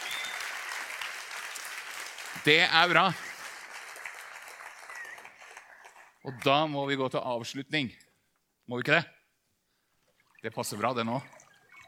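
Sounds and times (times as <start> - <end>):
audience applauding: 0.0 - 6.5
speech: 2.4 - 3.2, 6.2 - 8.0, 8.7 - 9.2, 10.4 - 11.4.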